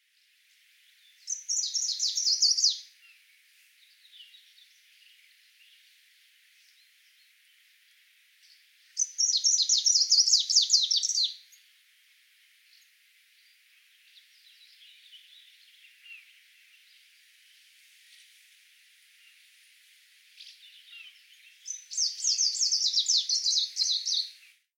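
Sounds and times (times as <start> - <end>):
Lundsångare singing: 0.8 - 7.8, 8.4 - 11.7, 12.7 - 17.3, 20.3 - 24.6.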